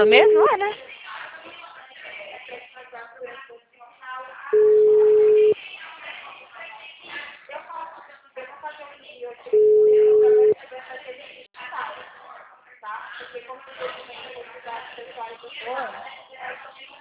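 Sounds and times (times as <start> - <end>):
people talking: 0.0 - 17.0
telephone busy tone after a dropped call: 4.6 - 5.6, 9.6 - 10.6.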